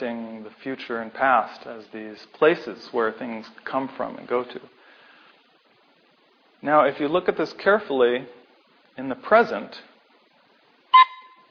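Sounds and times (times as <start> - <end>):
speech: 0.0 - 4.8, 6.6 - 8.4, 9.0 - 9.9
horn toot: 10.9 - 11.4.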